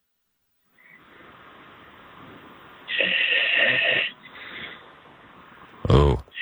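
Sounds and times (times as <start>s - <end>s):
steady phone line hiss: 0.8s - 5.8s
rasping snore through a tinny phone line: 2.9s - 4.9s, 5.8s - 6.4s.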